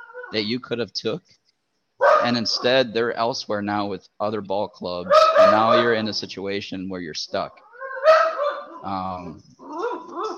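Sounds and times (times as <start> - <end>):
dog barking and whimpering: 0.0 - 0.4, 2.0 - 2.8, 5.1 - 6.0, 7.6 - 8.9, 9.6 - 10.3
speech: 0.3 - 1.4, 2.2 - 7.6, 8.8 - 9.6.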